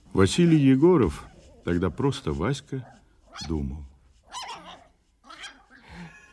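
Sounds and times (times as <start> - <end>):
speech: 0.2 - 3.9
dog barking while running across an oilcloth-covered dining table: 4.3 - 5.8.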